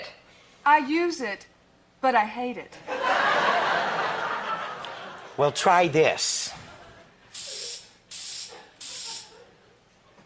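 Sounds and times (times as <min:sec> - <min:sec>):
speech: 0:00.7 - 0:03.1, 0:05.4 - 0:06.6
laughter: 0:02.8 - 0:05.6, 0:06.4 - 0:07.2
hairspray hissing from an aerosol can sprayed onto a person: 0:07.3 - 0:09.3.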